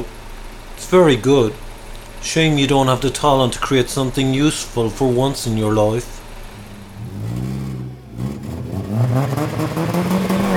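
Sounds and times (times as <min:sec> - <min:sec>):
speech: 0:00.9 - 0:01.6, 0:02.2 - 0:06.2
car engine revving and pulling away through gear changes: 0:05.6 - 0:10.5.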